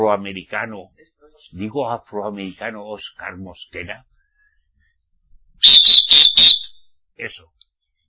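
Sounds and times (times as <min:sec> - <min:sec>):
speech: 0:00.0 - 0:04.1, 0:05.6 - 0:06.5, 0:07.2 - 0:07.6
whistle blasts: 0:05.6 - 0:06.8.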